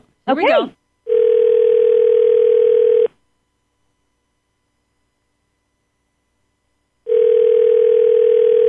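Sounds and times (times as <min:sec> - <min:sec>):
outgoing telephone call electronic ring tone: 0:01.1 - 0:03.2, 0:07.0 - 0:08.6.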